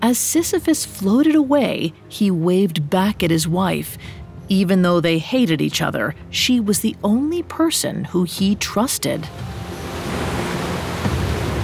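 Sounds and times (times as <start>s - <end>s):
speech: 0.0s - 9.6s
rushing river water: 9.3s - 11.6s.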